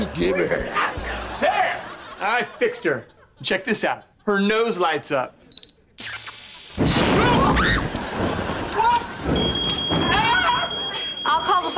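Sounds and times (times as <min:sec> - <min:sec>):
speech: 0:00.0 - 0:01.0, 0:02.2 - 0:05.4
laughter: 0:00.0 - 0:04.4, 0:07.2 - 0:11.0
smoke alarm steady piercing high tone: 0:09.3 - 0:11.7.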